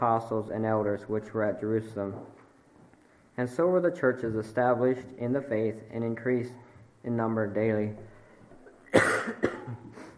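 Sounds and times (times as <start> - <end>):
speech: 0.0 - 2.4, 3.4 - 8.1
person coughing from a tickle in the throat: 8.8 - 10.1.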